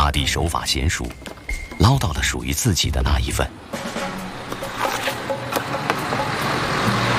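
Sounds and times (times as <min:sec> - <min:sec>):
speech: 0:00.2 - 0:03.9
trucks idling at a border crossing: 0:03.6 - 0:07.1.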